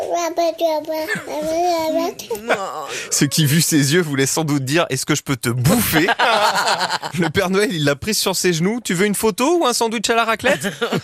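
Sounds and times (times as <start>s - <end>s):
baby babbling a nonsense phrase: 0.0s - 3.5s
speech: 0.2s - 11.0s
laughter: 5.7s - 7.8s, 10.4s - 11.0s.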